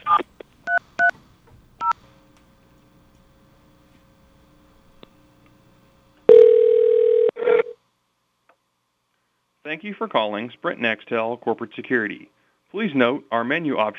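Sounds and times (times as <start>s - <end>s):
touch-tone dialing beeps: 0.0s - 1.1s, 6.3s - 7.7s
faint steady dial-type tone: 0.0s - 5.6s, 6.3s - 7.8s
loud buzzy telephone tone: 6.3s - 7.8s
speech: 9.7s - 13.9s.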